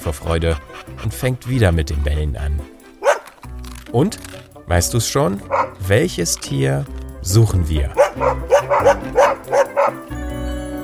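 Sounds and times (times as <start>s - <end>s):
speech: 0.0s - 2.8s, 3.9s - 10.3s
dog barking: 3.0s - 3.3s, 5.4s - 5.8s, 7.9s - 10.1s.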